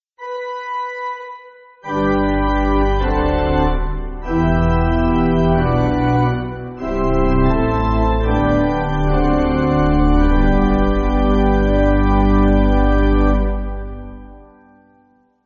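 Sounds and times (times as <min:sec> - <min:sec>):
threefold amen on pipe organ: 0:01.9 - 0:14.0.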